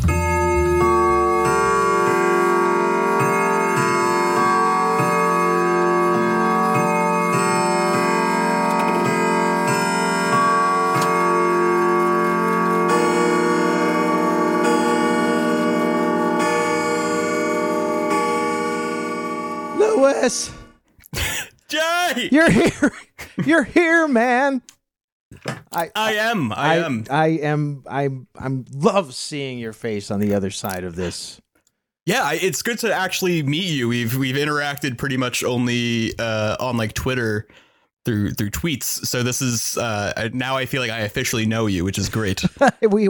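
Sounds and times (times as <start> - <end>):
clock bell chiming: 0.1 - 20.7
speech: 20.2 - 20.5, 22.3 - 24.7, 25.7 - 31.4, 32.1 - 43.0
laughter: 21.1 - 23.7, 42.0 - 42.9.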